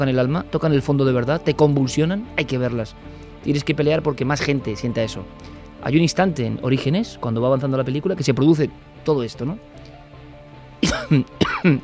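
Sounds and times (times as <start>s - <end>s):
speech: 0.0s - 9.9s, 10.9s - 11.8s
harsh human coughs with throat-clearing tail: 10.8s - 11.8s.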